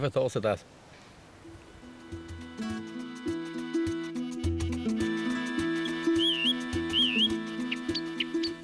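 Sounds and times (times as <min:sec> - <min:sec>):
speech: 0:00.0 - 0:00.9
steady melodic music backing: 0:01.5 - 0:08.6
short warbling bird calls and high chirps: 0:05.5 - 0:08.6
thin sustained whistle-like tone: 0:05.8 - 0:07.4.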